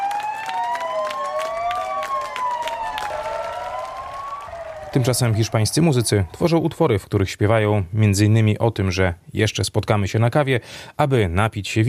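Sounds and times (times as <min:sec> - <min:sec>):
crowd clapping: 0:00.0 - 0:06.3
several police sirens wailing: 0:00.0 - 0:06.8
speech: 0:04.9 - 0:11.8.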